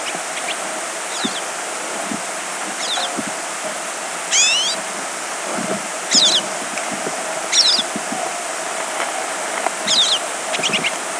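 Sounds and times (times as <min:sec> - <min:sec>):
pine siskin giving buzzy twittered calls: 0:00.0 - 0:01.5, 0:02.8 - 0:03.3, 0:04.3 - 0:04.8, 0:06.1 - 0:06.5, 0:07.5 - 0:08.0, 0:09.8 - 0:11.0
steady background hiss: 0:00.0 - 0:11.1.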